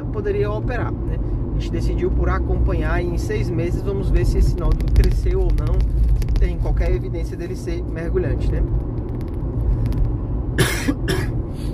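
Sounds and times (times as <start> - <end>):
low steady rumble: 0.0 - 11.7
speech: 0.2 - 9.0
person coughing from a dry throat: 10.6 - 11.4.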